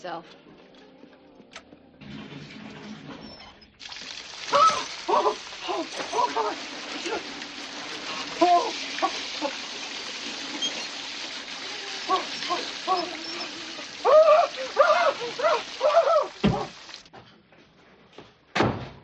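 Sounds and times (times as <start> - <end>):
speech: 0.0 - 0.6, 4.5 - 7.4, 8.4 - 9.7
hot shower water running: 2.0 - 17.1.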